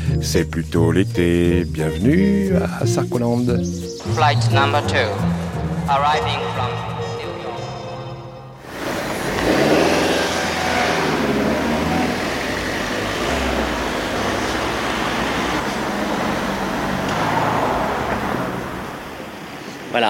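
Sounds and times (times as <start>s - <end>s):
speech: 0.2s - 6.9s
road traffic roar in a suburb beyond the city ring road: 3.9s - 7.8s, 8.6s - 20.0s.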